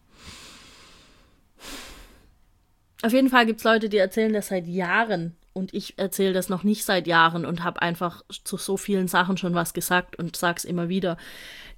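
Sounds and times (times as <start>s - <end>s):
deep breath from an agitated speaker: 0.0s - 2.3s, 11.2s - 11.7s
speech: 3.0s - 11.7s.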